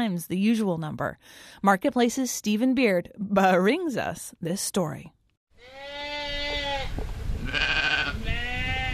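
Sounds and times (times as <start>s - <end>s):
speech: 0.0s - 6.0s
sheep bleating: 5.6s - 6.9s, 7.5s - 8.9s.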